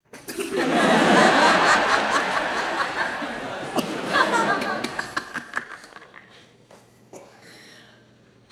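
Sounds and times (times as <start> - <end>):
quiet theater audience laughing: 0.2 - 6.5.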